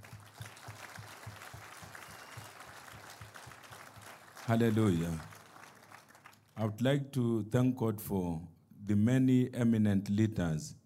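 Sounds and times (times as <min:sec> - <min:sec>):
large audience clapping hands in a steady rhythmic beat: 0:00.0 - 0:06.7
speech: 0:04.5 - 0:05.3, 0:06.6 - 0:10.8.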